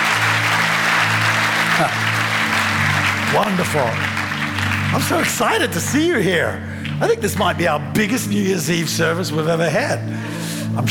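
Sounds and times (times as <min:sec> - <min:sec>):
audience clapping and applauding: 0:00.0 - 0:08.3
speech: 0:01.8 - 0:02.0, 0:03.3 - 0:04.1, 0:04.9 - 0:10.8.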